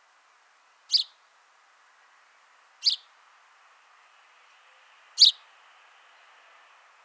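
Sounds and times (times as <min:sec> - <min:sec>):
faint steady hiss: 0:00.0 - 0:07.0
house sparrow Passer domesticus chirping: 0:00.9 - 0:01.2, 0:02.8 - 0:03.1, 0:05.2 - 0:05.5.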